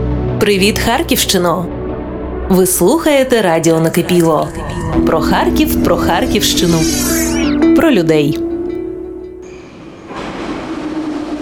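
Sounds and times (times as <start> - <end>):
speech: 0.4 - 1.8, 2.5 - 8.5
thin high whine: 4.4 - 7.8
metro train arriving at an underground station in Kharkiv: 4.5 - 11.4.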